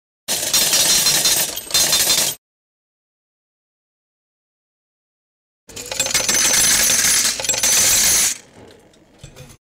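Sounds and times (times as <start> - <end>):
coin dispenser: 0.3 - 2.4, 5.7 - 9.6.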